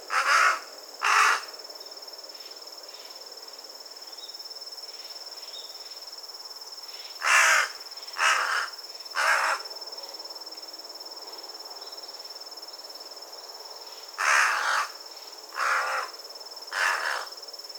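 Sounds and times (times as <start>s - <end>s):
carrion crow Corvus corone giving harsh caws: 0.1s - 1.5s, 7.2s - 9.7s, 14.2s - 17.3s.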